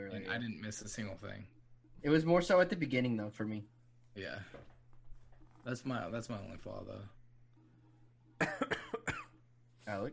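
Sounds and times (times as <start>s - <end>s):
speech: 0.0s - 4.7s, 5.6s - 7.2s, 9.8s - 10.1s
person coughing sharply: 8.4s - 9.4s.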